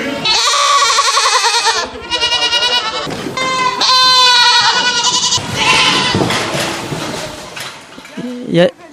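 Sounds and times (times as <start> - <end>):
goats bleating on a farm: 0.0 - 6.5.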